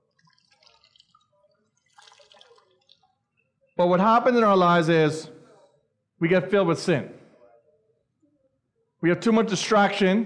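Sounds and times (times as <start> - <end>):
water poured onto a sponge: 0.0 - 3.3
speech: 3.8 - 5.4, 6.2 - 7.2, 9.0 - 10.2.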